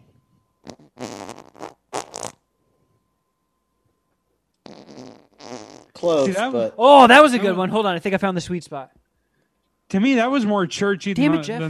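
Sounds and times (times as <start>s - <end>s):
sputtering fart noises ending in a wet squelch: 0.6s - 2.4s, 4.6s - 6.0s
speech: 6.0s - 9.0s, 9.9s - 11.6s.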